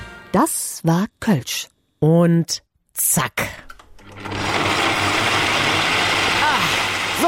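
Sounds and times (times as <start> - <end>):
speech: 0.3 - 3.5
electric kitchen blender running loudly: 4.0 - 7.2.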